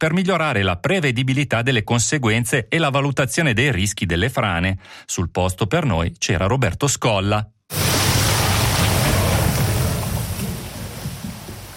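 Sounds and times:
speech: 0.0 - 7.8
water and sand surging down a channel: 7.7 - 11.7.

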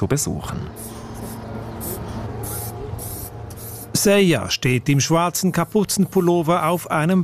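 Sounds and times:
speech: 0.0 - 1.0, 4.0 - 7.2
spray paint can spraying a mural onto a gym wall: 0.8 - 4.1.

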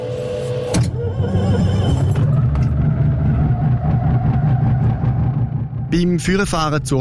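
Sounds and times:
small two-seater aircraft engine starting and running: 0.0 - 6.9
speech: 6.0 - 6.9.

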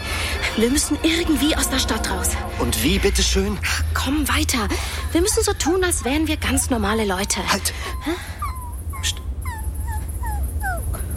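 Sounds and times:
speech: 0.6 - 8.4
dog whimpering: 5.0 - 11.1.

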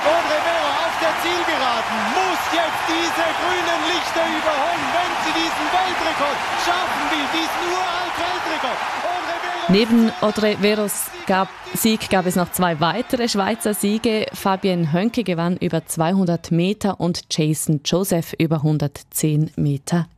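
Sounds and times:
Swiss stadium crowd cheering at an 800 metre athletics race: 0.0 - 16.0
speech: 1.2 - 20.1.

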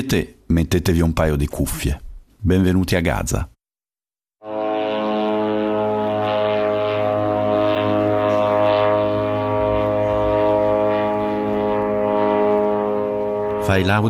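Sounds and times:
speech: 0.0 - 3.5, 13.6 - 14.0
aircraft engines droning overhead: 4.5 - 14.0.

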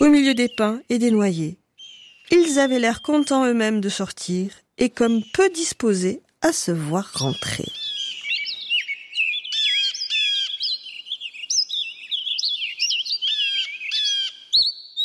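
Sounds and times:
speech: 0.0 - 1.6, 2.3 - 7.8
songbirds chirping and trilling in woodland thickets near Walden Massachusetts: 0.0 - 15.0.

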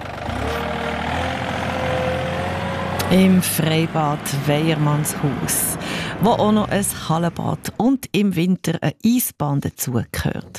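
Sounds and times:
service vehicle engine driving off at an outdoor swimming pool: 0.0 - 8.1
speech: 3.1 - 10.5.

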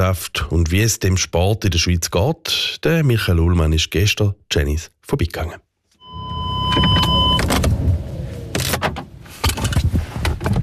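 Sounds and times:
speech: 0.0 - 5.6
car engine rumble arriving at an airfield in Switzerland in light rain: 6.0 - 10.6
car electric window whirring: 6.1 - 9.3.

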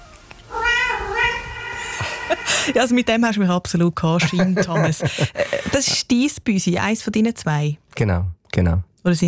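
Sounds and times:
cat meowing: 0.0 - 2.8
speech: 2.6 - 9.2
laughter: 4.2 - 6.1.

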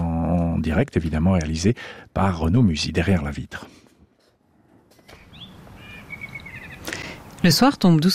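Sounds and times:
speech: 0.6 - 3.8, 7.4 - 8.1
blackbird whistling short clear phrases: 5.0 - 7.2.

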